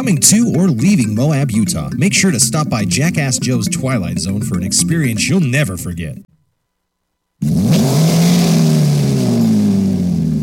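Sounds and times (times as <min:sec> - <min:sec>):
speech: 0:00.0 - 0:06.3
car engine revving: 0:07.4 - 0:10.4.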